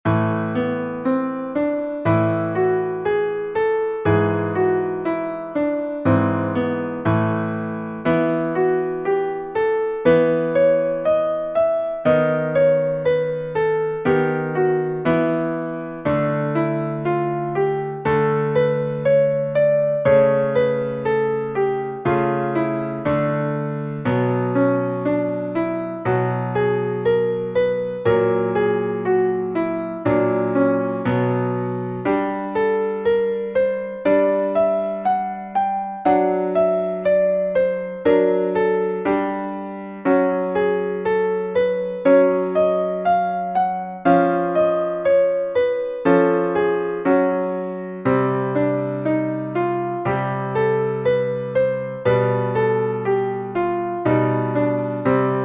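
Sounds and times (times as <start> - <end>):
melodic minor scale played: 0.1 - 55.4.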